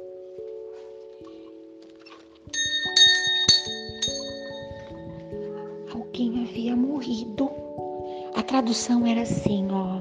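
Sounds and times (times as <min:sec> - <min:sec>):
church bells tolling to announce a death: 0:02.5 - 0:05.7
speech: 0:06.2 - 0:07.6, 0:08.5 - 0:10.0.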